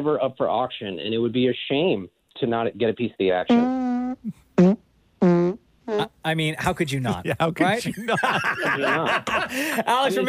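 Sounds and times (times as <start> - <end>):
speech: 0.0 - 5.4, 6.2 - 10.2
short buzzy farts: 3.5 - 6.1
laughter: 7.1 - 10.2.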